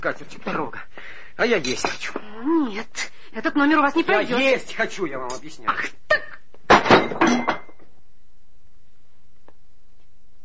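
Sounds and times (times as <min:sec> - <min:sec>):
speech: 0:00.0 - 0:06.0
thrown plate crashing and clattering: 0:06.7 - 0:07.9.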